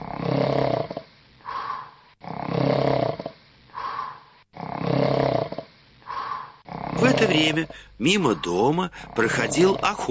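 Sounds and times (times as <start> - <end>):
human voice imitating loud snoring of a wolf asleep in bed: 0.0 - 1.1, 2.2 - 3.4, 4.6 - 5.7, 6.7 - 7.8, 8.9 - 10.0
speech: 7.2 - 10.0.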